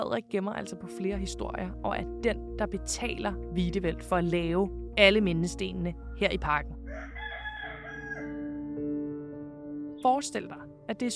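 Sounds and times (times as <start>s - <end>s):
speech: 0.0s - 6.8s, 10.0s - 11.1s
rooster crowing: 6.9s - 8.7s.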